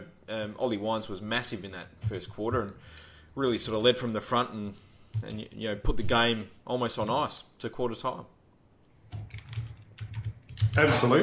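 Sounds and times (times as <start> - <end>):
speech: 0.3 - 8.4, 10.8 - 11.2
keyboard typing a message: 5.1 - 5.5, 9.0 - 11.0.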